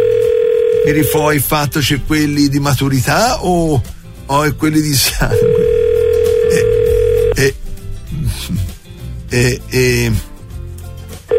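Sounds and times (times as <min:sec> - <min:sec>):
telephone line tone as a call is placed: 0:00.0 - 0:01.6, 0:05.2 - 0:07.4
speech: 0:00.9 - 0:05.7, 0:06.5 - 0:06.8, 0:07.4 - 0:07.6, 0:09.3 - 0:10.3.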